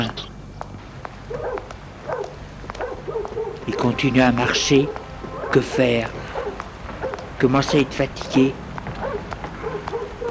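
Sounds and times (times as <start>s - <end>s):
low rumbling hum: 0.0s - 10.2s
dog barking in nearly deserted streets: 1.3s - 7.3s, 9.0s - 10.2s
speech: 3.7s - 6.2s, 7.4s - 8.6s.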